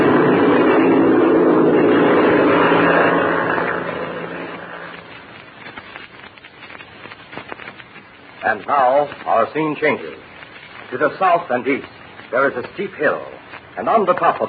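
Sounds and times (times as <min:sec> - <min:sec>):
airplane engine roar while taxiing and taking off: 0:00.0 - 0:05.8
faint crackle: 0:00.0 - 0:14.4
speech: 0:08.5 - 0:10.3, 0:10.9 - 0:14.4.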